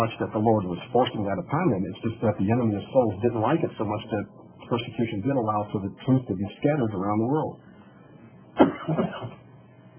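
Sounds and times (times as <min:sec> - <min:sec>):
speech: 0:00.0 - 0:07.7, 0:08.6 - 0:09.4
person coughing: 0:08.6 - 0:09.5.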